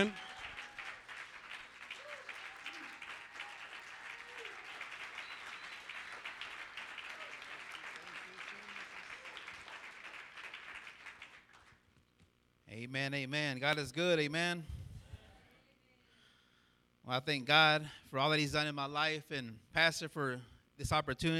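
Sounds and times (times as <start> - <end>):
speech: 0.0 - 0.2, 12.8 - 14.8, 17.1 - 21.3
audience applauding in a large room: 0.0 - 11.8.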